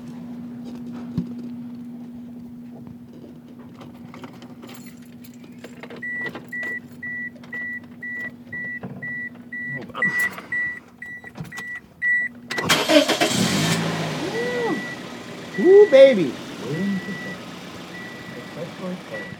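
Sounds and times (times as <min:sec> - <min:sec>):
car engine cranking and idling: 0:00.0 - 0:19.3
repeating electronic warning chime: 0:06.0 - 0:12.8, 0:14.5 - 0:18.5
speech: 0:16.1 - 0:16.4.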